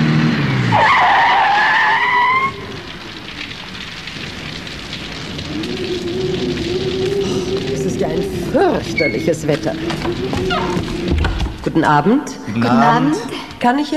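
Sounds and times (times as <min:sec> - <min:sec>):
car tires skidding to a stop: 0:00.0 - 0:12.0
constant hiss: 0:00.7 - 0:13.9
speech: 0:09.1 - 0:13.9.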